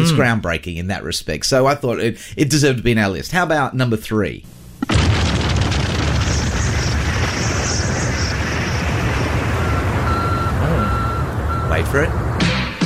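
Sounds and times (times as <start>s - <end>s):
speech: 0.1s - 5.3s, 11.8s - 12.2s
loud constant rumbling and crackly noise: 4.6s - 12.4s
beeping like a truck reversing in an old television channel ident: 9.6s - 11.9s.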